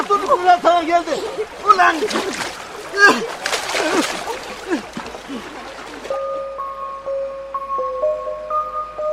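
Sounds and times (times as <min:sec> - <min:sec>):
speech: 0:00.0 - 0:05.5
husband and wife plunging into water: 0:00.0 - 0:06.2
soft melodic tone: 0:06.1 - 0:09.1.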